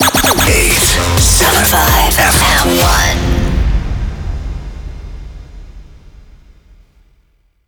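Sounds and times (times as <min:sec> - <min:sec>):
rapid fire jingle in F minor: 0:00.0 - 0:04.8.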